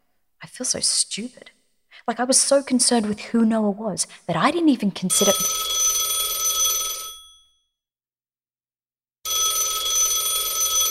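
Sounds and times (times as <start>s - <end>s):
speech: 0.5s - 5.7s
telephone with a long bright trilling ring: 5.1s - 7.6s, 9.2s - 10.8s.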